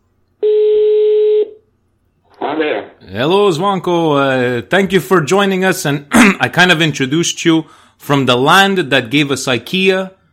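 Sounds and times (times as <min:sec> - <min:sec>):
European telephone ringing tone on a call to Sweden: 0:00.4 - 0:01.6
speech: 0:02.6 - 0:10.2.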